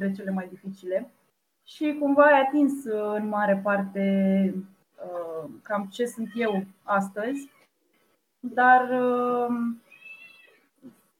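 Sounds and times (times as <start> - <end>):
speech: 0.0 - 7.6, 8.4 - 9.8
cat giving a faint trill: 9.8 - 10.6
cat giving a long loud downward-sliding meow: 9.8 - 10.7.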